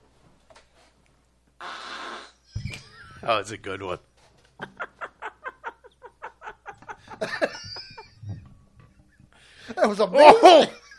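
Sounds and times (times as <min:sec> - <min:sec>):
sputtering fart: 0:01.6 - 0:02.8
laughter: 0:02.5 - 0:03.8, 0:04.6 - 0:10.9
speech: 0:03.2 - 0:04.1, 0:09.8 - 0:10.8.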